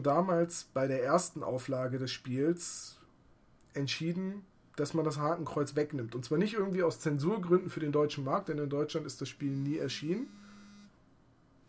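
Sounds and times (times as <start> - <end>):
speech: 0.0 - 3.0, 3.7 - 10.4
mobile phone notification buzz: 9.5 - 11.0.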